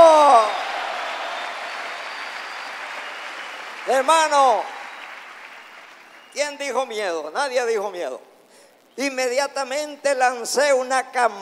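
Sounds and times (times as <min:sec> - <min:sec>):
congregation applauding: 0:00.0 - 0:06.8
speech: 0:03.9 - 0:04.8, 0:06.4 - 0:08.3, 0:09.0 - 0:11.3.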